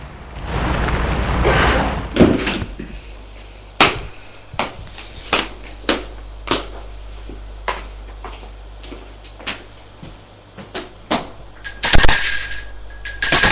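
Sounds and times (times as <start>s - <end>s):
car engine rumbling: 0.0s - 3.0s
sharp footstep-like clicks: 2.2s - 11.8s.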